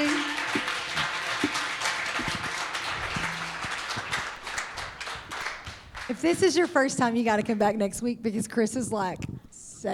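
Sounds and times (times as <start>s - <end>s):
audience applauding: 0.0s - 6.3s
speech: 6.1s - 9.9s.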